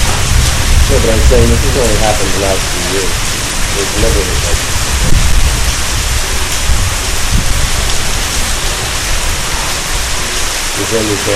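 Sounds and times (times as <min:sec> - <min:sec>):
low rumble of wind: 0:00.0 - 0:11.3
steady loud rain: 0:00.0 - 0:11.3
speech: 0:00.9 - 0:05.3, 0:10.8 - 0:11.3.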